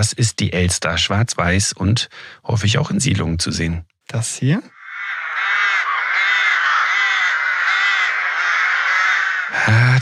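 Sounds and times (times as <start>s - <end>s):
speech: 0.0s - 4.8s
chorus of rooks cawing: 4.7s - 10.0s.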